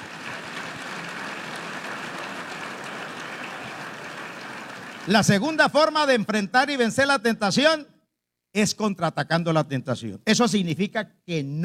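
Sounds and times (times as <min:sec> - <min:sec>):
crowd applauding: 0:00.0 - 0:05.6
speech: 0:05.0 - 0:07.9, 0:08.5 - 0:11.6.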